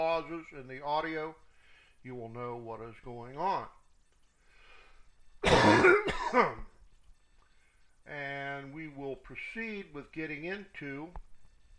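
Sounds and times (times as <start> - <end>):
speech: 0.2 - 3.8, 5.4 - 6.7, 8.0 - 11.3
rough cough from a person with chronic bronchitis: 5.4 - 6.6
person with chronic bronchitis clearing throat: 5.4 - 6.7.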